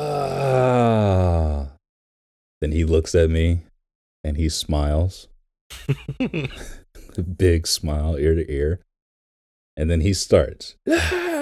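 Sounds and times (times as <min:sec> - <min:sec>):
person yawning loudly: 0:00.0 - 0:01.8, 0:06.1 - 0:06.8, 0:10.9 - 0:11.4
speech: 0:02.6 - 0:08.9, 0:09.8 - 0:11.2
laughter: 0:05.7 - 0:06.8.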